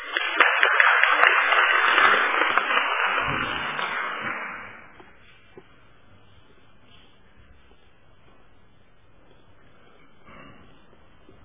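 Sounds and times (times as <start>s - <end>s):
crowd applauding as a minister is invited to the podium: 0.0s - 5.2s.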